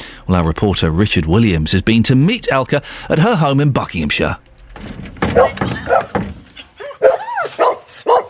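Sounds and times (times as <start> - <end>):
speech: 0.3 - 5.8
busy room sound: 3.9 - 7.8
several dogs barking and yipping excitedly: 5.2 - 8.2.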